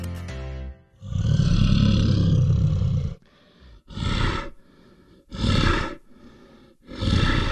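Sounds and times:
bear roaring: 1.0 - 4.6, 5.3 - 6.0, 6.8 - 7.5.

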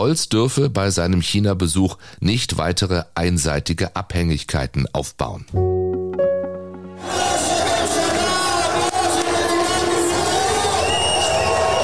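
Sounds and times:
speech: 0.0 - 5.7
brief quieter musical lead-in: 5.6 - 8.3
large crowd cheering and whooping at election campaign headquarters at night: 7.0 - 11.8.

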